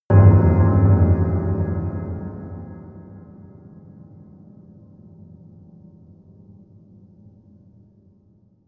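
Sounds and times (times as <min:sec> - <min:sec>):
low bell hit: 0:00.1 - 0:03.5.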